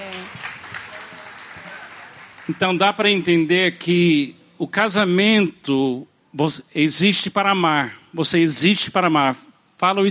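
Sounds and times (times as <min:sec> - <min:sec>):
crowd applause: 0:00.0 - 0:03.0
speech: 0:02.5 - 0:10.0.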